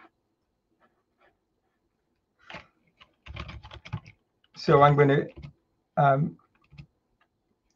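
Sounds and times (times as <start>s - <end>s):
computer keyboard typing while code is entered into a program file: 2.5s - 4.6s, 5.2s - 5.6s, 6.4s - 6.9s
speech: 4.6s - 6.4s.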